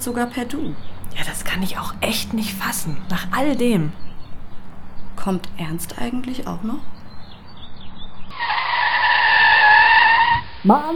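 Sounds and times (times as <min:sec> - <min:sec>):
speech: 0:00.0 - 0:04.1, 0:05.2 - 0:07.0, 0:10.6 - 0:10.9
faint road noise: 0:00.0 - 0:10.8
car tires screeching as the car skids to a stop: 0:00.7 - 0:05.6, 0:08.3 - 0:10.6.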